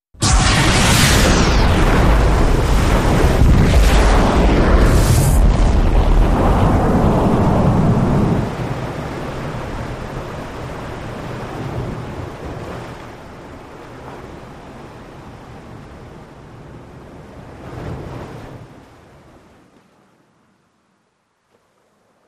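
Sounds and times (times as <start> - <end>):
depth charge explosion heard from the surface: 0.2 - 10.1.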